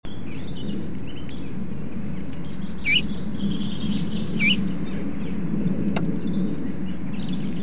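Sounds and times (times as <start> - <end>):
steady low rumble of background noise: 0.1 - 7.6
Eurasian bullfinch (Pyrrhula pyrrhula) calling: 2.8 - 3.1, 4.3 - 4.7.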